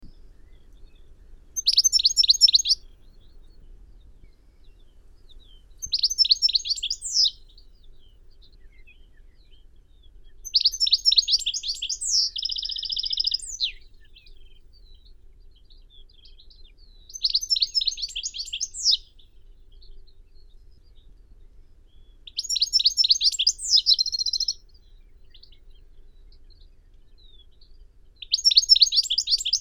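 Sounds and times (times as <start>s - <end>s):
goldfinch Carduelis carduelis: 1.6s - 2.8s, 5.8s - 7.4s, 10.4s - 13.8s, 17.1s - 19.0s, 22.3s - 24.6s, 28.2s - 29.5s.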